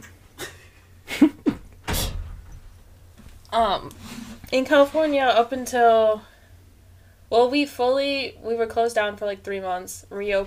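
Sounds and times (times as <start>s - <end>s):
door being pushed shut: 1.6s - 2.9s
speech: 3.6s - 6.3s, 7.3s - 10.4s.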